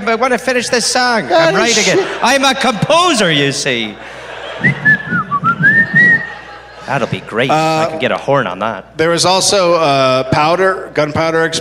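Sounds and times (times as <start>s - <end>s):
speech: 0.1s - 5.0s, 6.9s - 11.5s
laughter: 1.1s - 8.3s
person whistling a short wavering melody: 4.6s - 6.4s.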